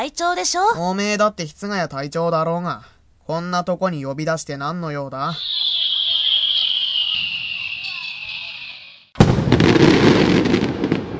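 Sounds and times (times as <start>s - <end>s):
speech: 0.0s - 5.8s
firework whistling: 5.3s - 11.0s.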